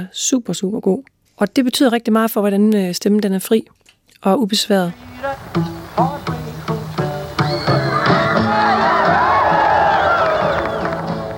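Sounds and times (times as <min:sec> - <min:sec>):
speech: 0:00.0 - 0:06.2
punchy rhythmic music hits: 0:05.0 - 0:11.3
concert crowd of girls screaming: 0:07.3 - 0:11.3.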